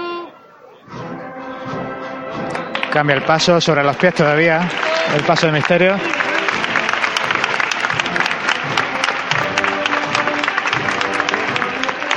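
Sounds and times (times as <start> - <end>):
street crowd in Jaén applauding a Holy Week procession float: 2.4 - 12.1
speech: 3.0 - 6.2.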